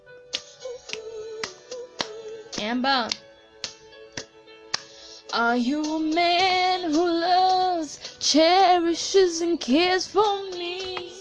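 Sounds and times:
hand clapping: 0.3s - 5.0s
speech: 2.6s - 3.2s, 5.3s - 10.6s.

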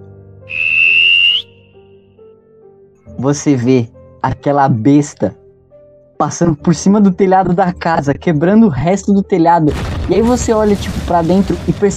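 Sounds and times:
shrill whistle blast: 0.5s - 1.8s
speech: 3.2s - 5.4s, 6.2s - 11.9s.

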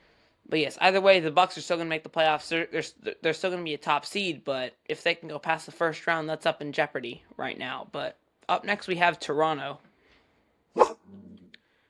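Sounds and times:
speech: 0.5s - 9.9s, 10.8s - 11.3s
dog barking: 10.8s - 11.1s
dog low rumbling growl: 10.8s - 11.6s.

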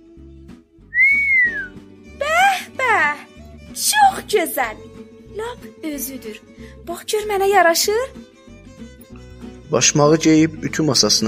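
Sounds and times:
person whistling joyfully: 0.9s - 1.8s
speech: 3.8s - 8.3s, 9.7s - 11.2s.

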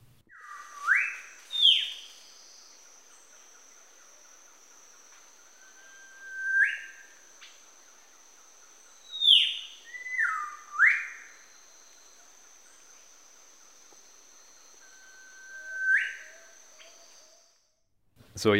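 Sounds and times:
Biak Whistler singing piercing whistled phrases: 0.3s - 3.3s, 5.3s - 7.6s, 8.8s - 13.1s, 14.2s - 17.6s
steady high insect-like hum: 0.4s - 17.8s
speech: 18.4s - 18.5s.

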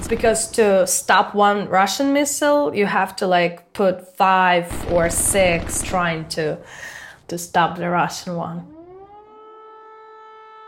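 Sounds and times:
speech: 0.1s - 8.7s
air raid siren wailing: 4.8s - 10.6s.

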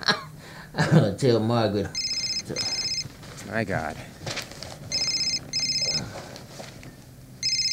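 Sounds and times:
speech: 0.8s - 2.8s, 3.5s - 4.1s
telephone ringing with a bright electronic trill: 2.0s - 3.1s, 4.9s - 6.2s, 7.4s - 7.7s.

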